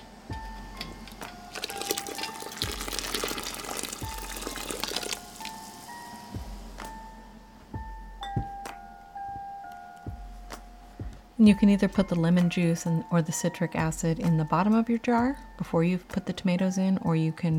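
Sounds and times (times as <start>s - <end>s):
hot water pouring out of a glass canning jar: 1.5s - 5.8s
speech: 11.4s - 17.5s.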